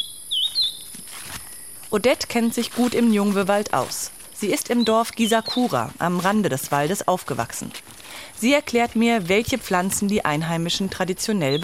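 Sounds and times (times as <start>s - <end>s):
bird chirps in rainforest: 0.0s - 1.7s, 4.4s - 5.8s, 11.2s - 11.6s
cicadas droning in rainforest: 0.0s - 11.6s
speech: 1.9s - 11.6s.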